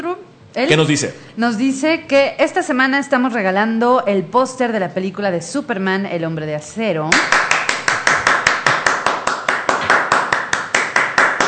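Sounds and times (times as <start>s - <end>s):
speech: 0.0s - 7.5s
applause of hands clapping in a quick steady rhythm: 7.1s - 11.4s.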